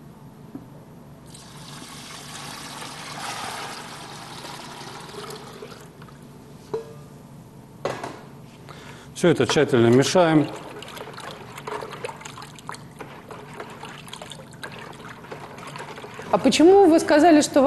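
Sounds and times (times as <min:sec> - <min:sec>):
water pouring into a bowl of bread-baking mixture: 0:01.3 - 0:06.2, 0:10.1 - 0:16.4
speech: 0:09.2 - 0:10.6, 0:16.4 - 0:17.6.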